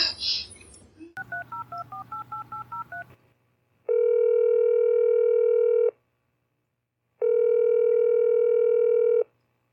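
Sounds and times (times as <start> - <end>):
telephone call ringing tones before reaching voicemail: 1.2 - 3.1, 3.9 - 5.9, 7.2 - 9.3.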